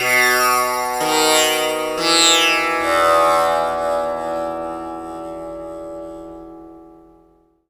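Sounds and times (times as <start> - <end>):
tampura: 0.0 - 7.6.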